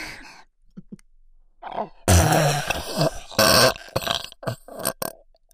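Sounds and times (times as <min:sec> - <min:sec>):
loud drawn-out human burps: 0:01.6 - 0:05.4.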